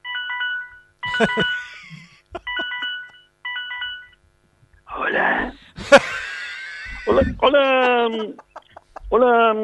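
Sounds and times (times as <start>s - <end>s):
phone ringing tone: 0.0s - 1.7s, 2.5s - 4.2s
speech: 1.2s - 2.0s, 7.2s - 8.4s, 9.1s - 9.6s
laughter: 5.8s - 9.4s.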